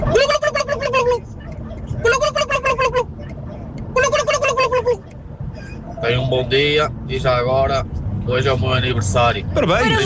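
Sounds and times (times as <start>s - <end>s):
male caller imitating a turkey gobble: 0.0s - 5.1s
speech: 6.3s - 10.0s.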